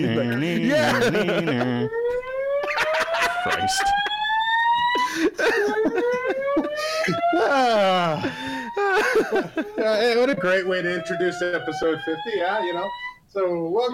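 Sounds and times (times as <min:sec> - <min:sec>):
speech: 0:00.0 - 0:02.2, 0:03.4 - 0:04.1, 0:05.0 - 0:13.9
people laughing: 0:00.0 - 0:10.4
loud whooping party-alarm siren: 0:00.0 - 0:13.9.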